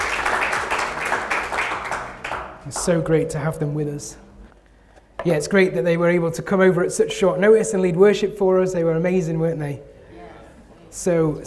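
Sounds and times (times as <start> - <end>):
crowd applauding: 0.0 - 2.9
speech: 2.7 - 4.2, 5.2 - 9.9, 10.9 - 11.4.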